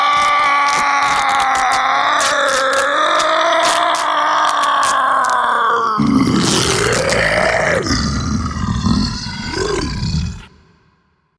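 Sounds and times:
clothes ripping: 0.1 - 5.5, 6.3 - 7.3
man transforming into werewolf: 0.1 - 10.7.

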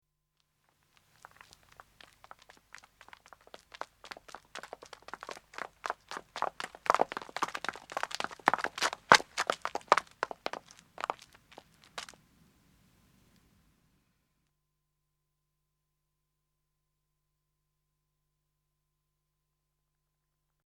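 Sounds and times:
footsteps of two women running on road and stopping: 1.0 - 12.2.

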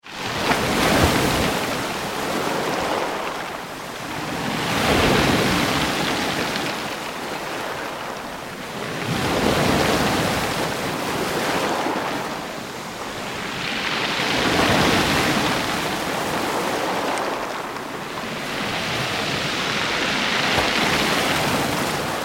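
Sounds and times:
medium sea surf onto a pebble beach: 0.1 - 22.2
pebbles rolling in close waves: 19.6 - 22.2.

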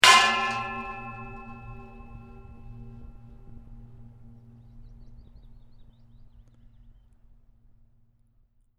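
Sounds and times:
resonating metal pipe impact with long gong-like ring: 0.0 - 4.4.

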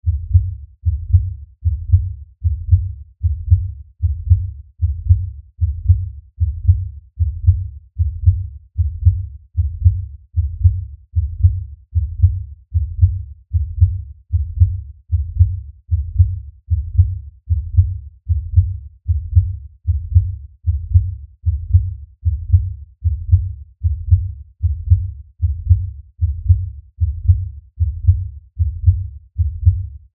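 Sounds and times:
LFE low bass pounding rhythm beat: 0.0 - 30.0.

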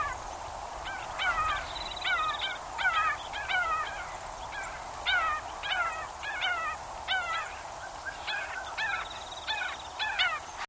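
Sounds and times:
background hiss: 0.0 - 10.6
swamp bird calls: 0.0 - 10.6.

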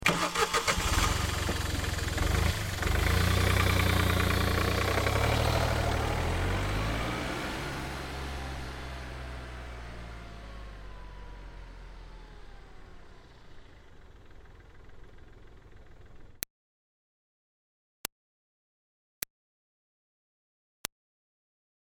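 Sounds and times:
2005 Smart Fortwo car starting driving away and stopping: 0.0 - 16.4.

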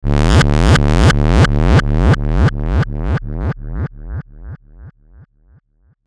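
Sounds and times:
bass sweep with distortion and delay: 0.0 - 5.3.

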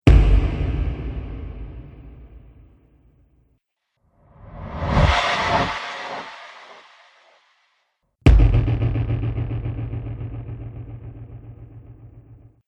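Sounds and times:
cinematic drum hits: 0.1 - 2.7, 8.3 - 12.4.

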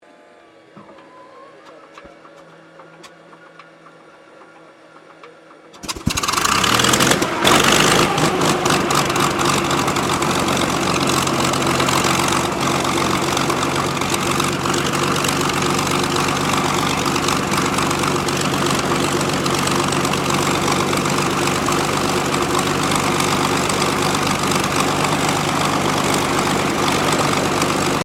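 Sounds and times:
P-40 Kittyhawk WW2 fighter plane engine starting and idling: 1.6 - 28.0.

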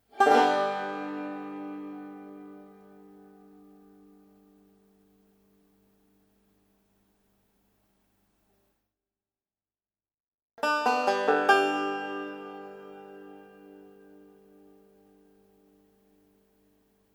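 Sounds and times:
phrases on an open G five-string banjo: 0.0 - 5.2, 10.6 - 16.4.

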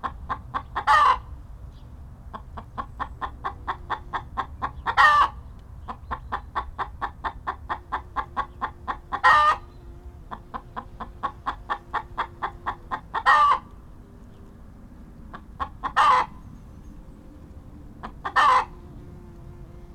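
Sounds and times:
chicken clucking: 0.0 - 1.3, 2.3 - 9.6, 10.3 - 13.7, 15.2 - 16.4, 18.0 - 18.8
loud harsh chicken squawks: 0.0 - 1.3, 2.8 - 9.7, 11.2 - 13.7, 15.3 - 16.4, 18.0 - 18.8.

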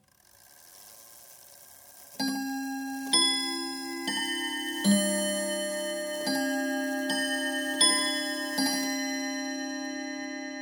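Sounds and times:
domestic chiming clock striking half past the hour: 2.1 - 10.5.

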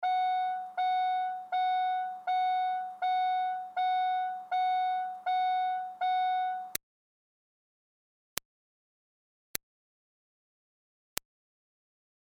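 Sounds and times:
2005 Smart Fortwo car door chime: 0.0 - 6.7.

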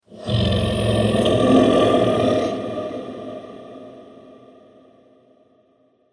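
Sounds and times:
monster dragon roar: 0.1 - 3.9.

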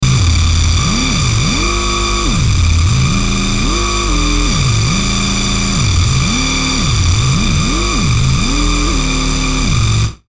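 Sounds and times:
static engine revving: 0.0 - 10.2.

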